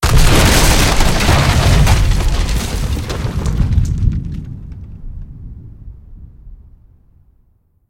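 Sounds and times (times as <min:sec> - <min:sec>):
explosion on a plantation: 0:00.0 - 0:07.4.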